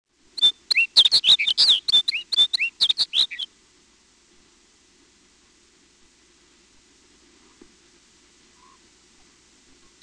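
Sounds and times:
Snow Bunting song with warbled notes and short chirps: 0.4 - 3.5.

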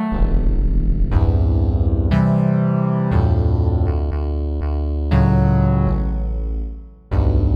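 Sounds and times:
slow wah synth: 0.1 - 7.5.

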